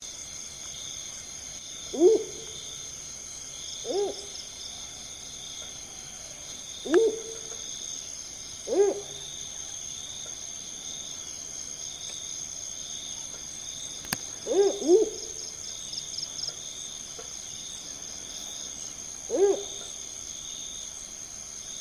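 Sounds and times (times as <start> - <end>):
Strix seloputo spotted wood owl calling: 1.9 - 2.6, 3.8 - 4.9, 6.2 - 7.6, 8.6 - 9.7, 14.4 - 15.4, 19.3 - 19.9.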